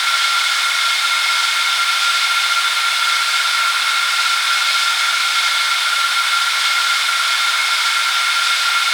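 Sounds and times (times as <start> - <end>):
F15 fighter jet front engine: 0.0 - 8.9.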